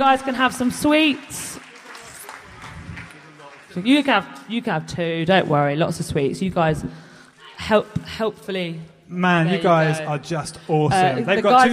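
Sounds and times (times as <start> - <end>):
speech: 0.0 - 1.6, 3.7 - 7.0, 7.6 - 11.7
crowd applauding with dense steady clapping: 0.3 - 4.6.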